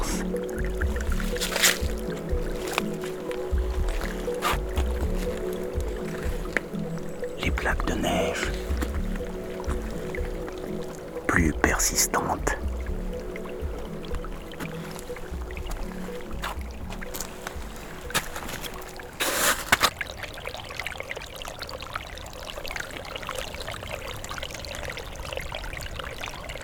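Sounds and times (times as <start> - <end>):
water splash: 0.0 - 11.3, 12.6 - 22.1
water gurgling beyond melting snow: 0.0 - 26.6
speech: 7.9 - 8.6, 11.4 - 12.6.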